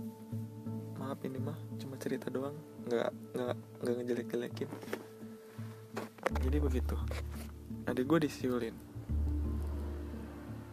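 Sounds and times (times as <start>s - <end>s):
speech: 1.1s - 5.1s, 6.4s - 8.9s
motorbike engine passing by: 9.0s - 10.7s.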